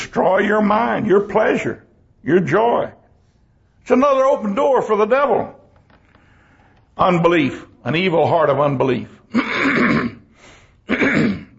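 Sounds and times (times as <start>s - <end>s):
speech: 0.1s - 3.0s, 3.8s - 5.6s, 7.0s - 10.0s
person clearing throat in harsh rasping bursts: 9.3s - 11.5s.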